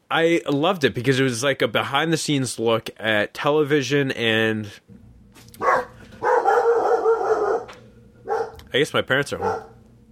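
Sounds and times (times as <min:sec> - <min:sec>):
speech: 0:00.1 - 0:05.0, 0:05.6 - 0:05.9, 0:08.7 - 0:09.7
pet dog barking at home: 0:05.6 - 0:08.6, 0:09.4 - 0:09.8.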